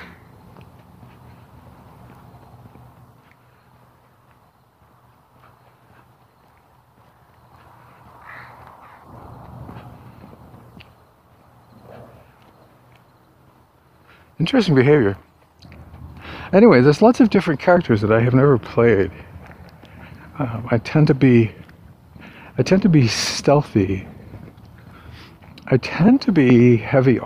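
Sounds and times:
crows cawing: 7.6 - 10.2
speech: 14.4 - 15.3, 16.5 - 19.3, 20.4 - 21.6, 22.6 - 24.1, 25.7 - 27.2.

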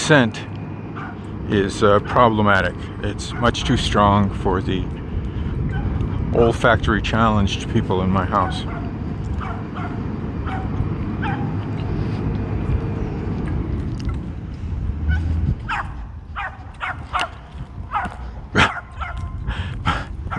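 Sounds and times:
steady low rumble: 0.0 - 20.3
speech: 0.1 - 0.4, 1.5 - 5.0, 6.3 - 8.8
dog barking: 1.0 - 1.2, 8.6 - 11.5, 15.1 - 19.4.

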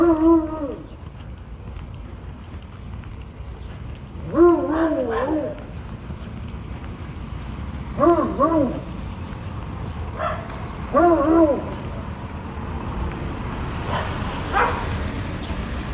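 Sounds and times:
dogs barking outdoors: 0.0 - 0.9, 4.2 - 5.8, 7.9 - 9.1, 10.0 - 12.1, 13.8 - 15.1
steady windy rumble: 0.0 - 15.9.

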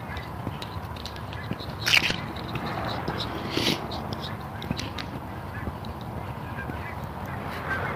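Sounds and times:
flocks of geese honking overhead: 0.0 - 7.9
steady loud broadband traffic noise: 0.0 - 7.9.

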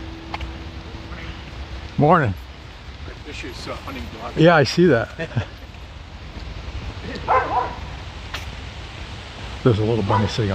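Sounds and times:
steady low outdoor rumble: 0.0 - 10.5
speech: 2.0 - 2.4, 3.3 - 5.6, 9.6 - 10.5
wind noise: 2.8 - 10.5
dog barking: 7.2 - 7.9, 10.1 - 10.4.

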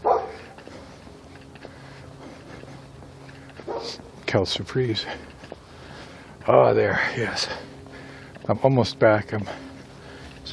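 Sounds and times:
dog barking: 0.0 - 0.5, 3.6 - 4.0
faint outdoor hum: 0.0 - 10.5
speech: 3.8 - 5.3, 6.4 - 7.7, 8.5 - 9.6.

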